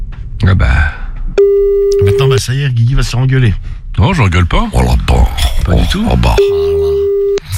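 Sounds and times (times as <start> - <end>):
speech: 0.4 - 0.8, 2.4 - 6.8
telephone call ringing tone: 1.4 - 2.4, 6.4 - 7.4.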